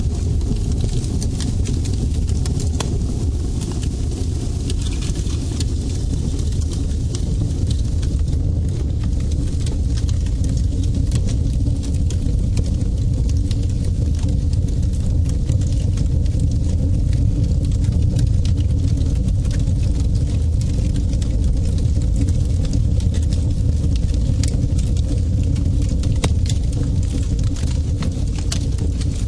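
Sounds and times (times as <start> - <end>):
fire: 0.0 - 29.2.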